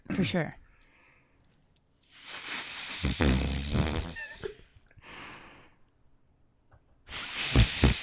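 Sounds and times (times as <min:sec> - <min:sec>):
man imitating snoring into the crook of his elbow: 0:02.4 - 0:04.5, 0:07.4 - 0:08.0.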